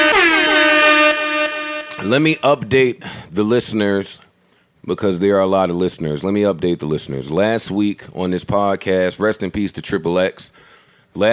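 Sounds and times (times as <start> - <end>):
air horn sound effect blast: 0.0 - 2.6
speech: 2.0 - 11.3.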